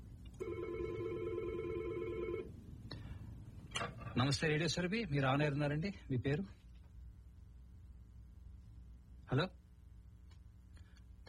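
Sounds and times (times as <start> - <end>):
low hum: 0.0 - 11.2
telephone ringing with an incoming call: 0.4 - 2.5
speech: 3.8 - 6.6, 9.3 - 9.6.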